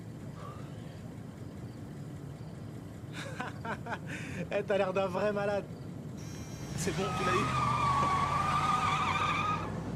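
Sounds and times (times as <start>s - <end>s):
laughter: 3.1s - 4.5s
speech: 3.4s - 5.8s, 6.8s - 7.8s
car pulling away hard with skidding tyres squealing: 6.2s - 9.8s.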